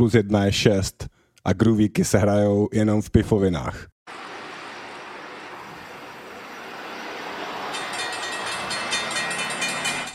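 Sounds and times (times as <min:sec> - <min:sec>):
speech: 0:00.0 - 0:04.2
train rushing past with rattling wheels and cars: 0:04.1 - 0:10.1.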